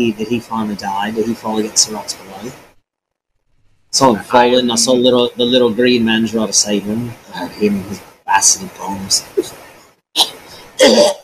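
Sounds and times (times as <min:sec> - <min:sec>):
speech: 0:00.0 - 0:02.7, 0:03.9 - 0:09.6, 0:10.2 - 0:11.2
person coughing harshly: 0:10.2 - 0:11.2.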